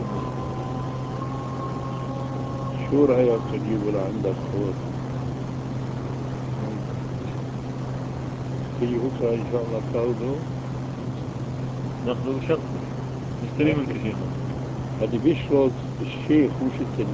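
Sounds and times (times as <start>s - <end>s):
electric generator engine running: 0.0s - 15.4s
speech: 2.9s - 5.0s, 8.8s - 10.6s, 12.0s - 12.9s, 13.5s - 14.4s, 15.0s - 17.1s.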